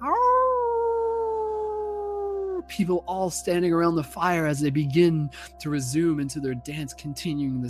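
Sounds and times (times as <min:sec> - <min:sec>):
person howling like a wolf: 0:00.0 - 0:02.6
speech: 0:02.7 - 0:07.6.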